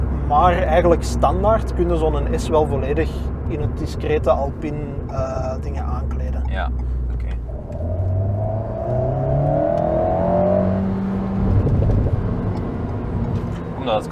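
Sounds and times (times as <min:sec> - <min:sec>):
sports car with a DSG gearbox revving through the gears: 0:00.0 - 0:14.0
speech: 0:00.3 - 0:06.9, 0:13.8 - 0:14.0
sports car crackling exhaust pops coming off the throttle: 0:05.0 - 0:10.5, 0:11.4 - 0:13.7.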